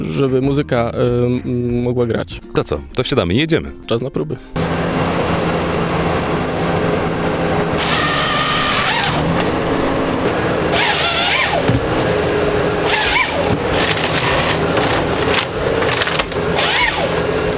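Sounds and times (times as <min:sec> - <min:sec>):
speech: 0:00.2 - 0:04.6
forestry harvester engine drone: 0:04.6 - 0:17.5.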